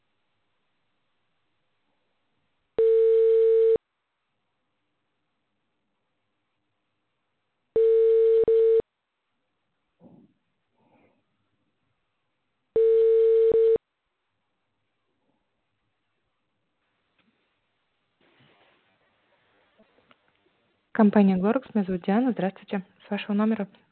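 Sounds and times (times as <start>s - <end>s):
telephone ringback tone while a callback call connects: 2.8s - 3.8s, 7.8s - 8.8s, 12.8s - 13.8s
speech: 21.0s - 23.8s.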